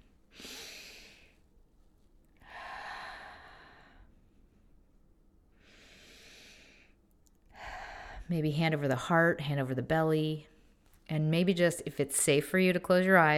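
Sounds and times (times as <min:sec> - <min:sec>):
slow deep breaths during a guided relaxation exercise: 0:00.1 - 0:01.5, 0:02.4 - 0:04.9, 0:05.5 - 0:08.3
speech: 0:08.3 - 0:10.5, 0:11.1 - 0:13.3.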